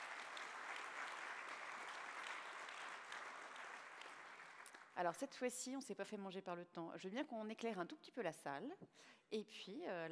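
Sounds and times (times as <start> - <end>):
room full of people applauding: 0.0 - 5.0
speech: 5.0 - 10.1.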